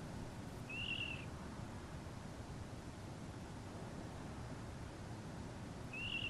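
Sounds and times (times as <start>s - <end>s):
steady hiss: 0.0s - 6.2s
water rail calls on nocturnal migration: 0.7s - 1.3s, 5.9s - 6.2s.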